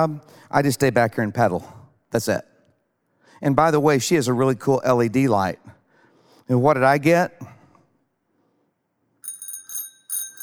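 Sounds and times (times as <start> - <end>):
speech: 0.0 - 2.5, 3.4 - 5.8, 6.5 - 7.6
bicycle bell ringing: 9.2 - 10.4.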